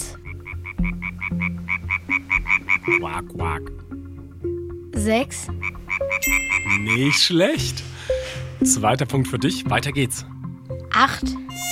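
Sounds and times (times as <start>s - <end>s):
frog croaking in short buzzy pulses: 0.0s - 4.9s, 5.5s - 7.3s
speech: 2.9s - 4.1s, 5.0s - 7.9s, 8.6s - 10.3s, 11.0s - 11.6s.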